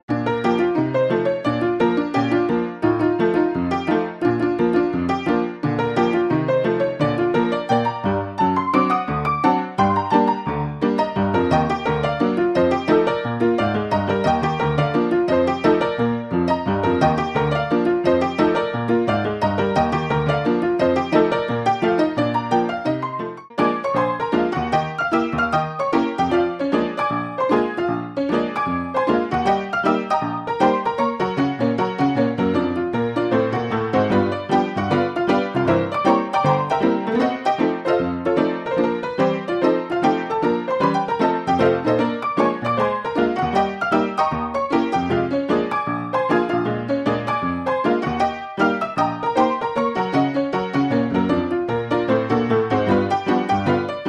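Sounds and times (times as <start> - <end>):
tack piano: 0.0 - 54.0.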